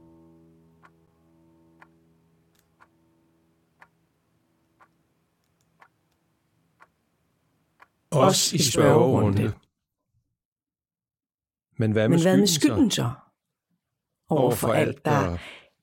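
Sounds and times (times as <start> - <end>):
clock ticking: 0.7 - 1.1, 1.8 - 2.0, 2.6 - 3.0, 3.6 - 9.2
speech: 8.2 - 9.6, 11.8 - 13.2, 14.3 - 15.6.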